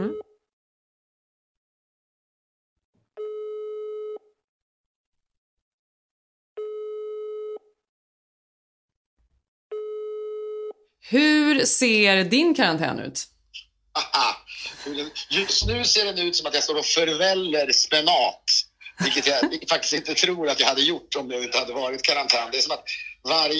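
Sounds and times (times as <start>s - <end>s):
telephone ringback tone while placing a call: 3.2s - 4.2s, 6.6s - 7.7s, 9.7s - 10.8s
speech: 11.1s - 13.4s, 14.0s - 23.5s
laughter: 14.0s - 16.2s, 18.8s - 20.6s.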